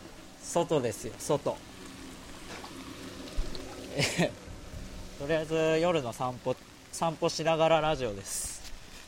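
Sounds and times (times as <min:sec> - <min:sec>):
rain falling outdoors during night walk: 0:00.0 - 0:09.0
speech: 0:00.5 - 0:01.7, 0:04.0 - 0:04.4, 0:05.2 - 0:08.5
laughter: 0:03.9 - 0:04.4.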